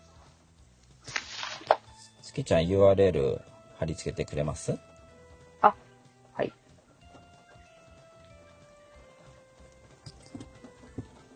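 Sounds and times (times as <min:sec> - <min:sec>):
scattered raindrops tapping and crackling: 0:00.9 - 0:01.8
speech: 0:02.4 - 0:04.9, 0:05.6 - 0:05.8, 0:06.4 - 0:06.6.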